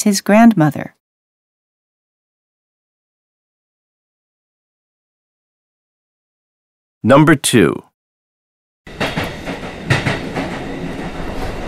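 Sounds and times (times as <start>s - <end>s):
speech: 0.0s - 1.0s, 7.0s - 7.9s
train rumbling along rails: 8.9s - 11.6s.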